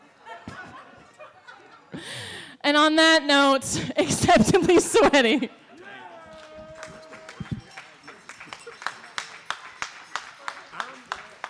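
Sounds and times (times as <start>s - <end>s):
laughter: 0.0s - 2.3s, 3.8s - 9.8s
speech: 1.9s - 5.6s
murmuring voices: 4.7s - 9.8s
audience cheer: 5.7s - 11.4s
audience rhythmic clapping: 6.3s - 11.4s.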